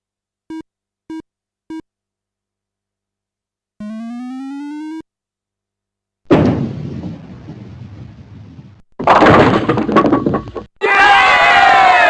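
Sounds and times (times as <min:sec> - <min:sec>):
short electronic beeps: 0:00.5 - 0:01.8, 0:03.8 - 0:05.0
rising synthetic tone: 0:03.8 - 0:05.0
bowling ball rolling: 0:07.2 - 0:10.7
crowd cheering: 0:10.8 - 0:12.0.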